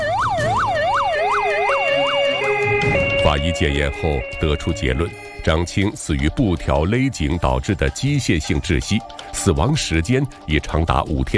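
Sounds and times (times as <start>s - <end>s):
police car and ambulance sirens wailing: 0.0s - 6.0s
speech: 3.3s - 11.3s.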